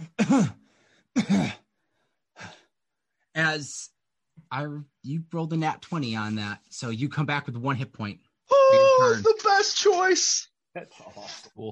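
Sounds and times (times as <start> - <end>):
person coughing and clearing their throat: 0.0 - 0.6, 1.2 - 1.7
speech: 0.3 - 0.6, 1.2 - 1.6, 3.4 - 11.6.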